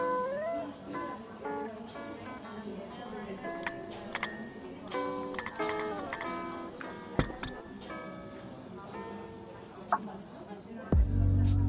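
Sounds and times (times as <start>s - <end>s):
murmur of overlapping voices in a coffee shop: 0.0s - 11.6s
cups and dishes clinking in a coffee shop: 3.5s - 8.4s.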